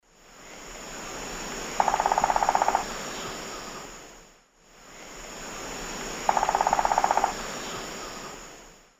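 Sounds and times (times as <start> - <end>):
Celeus torquatus drumming in South America: 1.8 - 3.0, 6.2 - 7.6.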